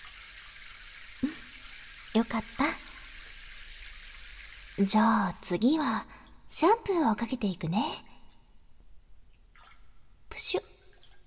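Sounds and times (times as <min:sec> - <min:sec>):
shower water running: 0:00.0 - 0:06.2
speech: 0:02.2 - 0:02.8, 0:04.8 - 0:08.1, 0:10.4 - 0:10.7.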